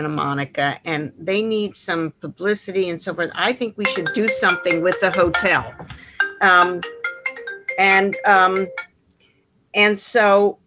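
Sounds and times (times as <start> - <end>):
speech: 0.0 - 7.0, 7.8 - 8.9, 9.7 - 10.6
mobile phone ringtone playing a melodic tune: 3.8 - 8.8.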